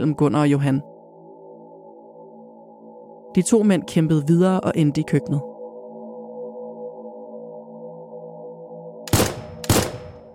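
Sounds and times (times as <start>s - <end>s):
speech: 0.0s - 0.9s, 3.4s - 5.5s
low sustained musical drone: 0.0s - 10.3s
pistol shots: 9.1s - 10.3s.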